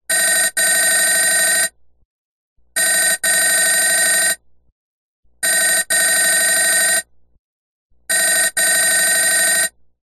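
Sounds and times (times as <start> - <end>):
telephone ringing: 0.1 - 1.7, 2.8 - 4.4, 5.4 - 7.1, 8.1 - 9.8.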